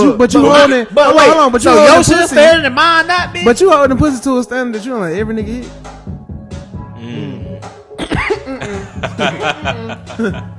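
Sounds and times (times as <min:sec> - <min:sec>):
speech: 0:00.1 - 0:06.2, 0:09.0 - 0:10.5
person chuckling: 0:08.0 - 0:10.5
person coughing forcefully: 0:08.0 - 0:10.5.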